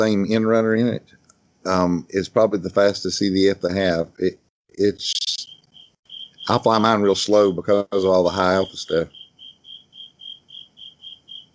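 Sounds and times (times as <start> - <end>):
speech: 0.0 - 5.2, 6.5 - 9.2
cricket chirping: 5.0 - 11.5.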